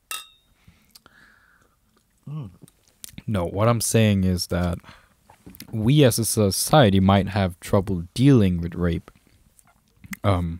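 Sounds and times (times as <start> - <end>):
glass clinking: 0.1 - 0.6
speech: 2.3 - 2.7, 3.3 - 5.0, 5.7 - 9.2, 10.2 - 10.5.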